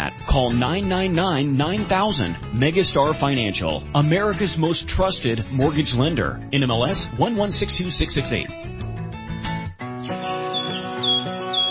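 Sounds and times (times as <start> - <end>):
speech: 0.4 - 8.8
birds chirping in spring: 10.0 - 11.6.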